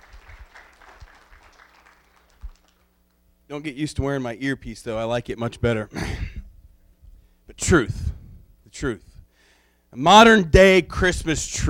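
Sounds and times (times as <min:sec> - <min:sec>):
audience applause after Christmas skits: 0:00.0 - 0:02.9
speech: 0:03.5 - 0:06.2, 0:07.6 - 0:08.1, 0:08.8 - 0:09.1, 0:09.9 - 0:11.6.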